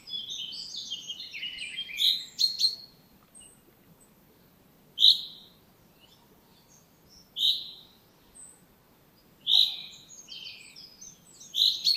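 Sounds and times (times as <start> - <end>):
common chaffinch Fringilla coelebs chinking calls: 0.0 - 3.6, 5.0 - 8.6, 9.4 - 11.9
quiet background hiss: 0.0 - 11.9.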